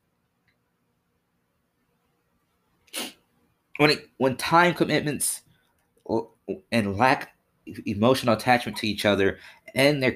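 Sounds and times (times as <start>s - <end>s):
person sneezing: 2.9s - 3.2s
speech: 3.8s - 5.5s, 6.1s - 10.1s.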